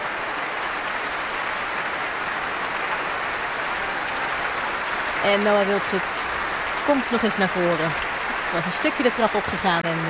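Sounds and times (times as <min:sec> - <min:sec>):
large concert audience applauding the orchestra: 0:00.0 - 0:10.0
speech: 0:05.2 - 0:10.0.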